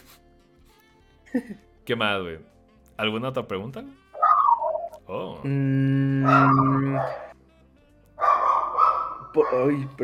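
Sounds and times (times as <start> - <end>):
speech: 1.3 - 4.0, 5.1 - 7.3, 9.3 - 10.0
dogs barking: 4.2 - 4.9, 6.2 - 7.4, 8.2 - 10.0.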